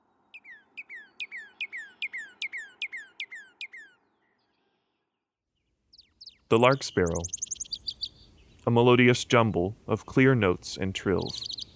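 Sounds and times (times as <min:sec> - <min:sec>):
Northern Cardinal song: 0:00.3 - 0:04.6, 0:05.9 - 0:08.6, 0:11.2 - 0:11.7
speech: 0:06.5 - 0:07.4, 0:08.7 - 0:11.5.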